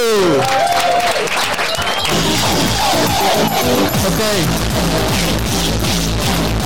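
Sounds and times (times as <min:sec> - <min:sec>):
crowd applauding with dense clapping: 0:00.0 - 0:06.5
voices calling out: 0:01.8 - 0:05.7
speech: 0:03.3 - 0:05.6.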